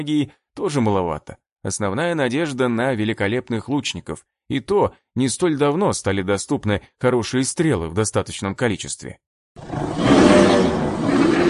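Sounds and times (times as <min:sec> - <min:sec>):
speech: 0:00.0 - 0:10.1
yeti-gibbon hybrid creature roaring across a mountain valley: 0:09.6 - 0:11.4.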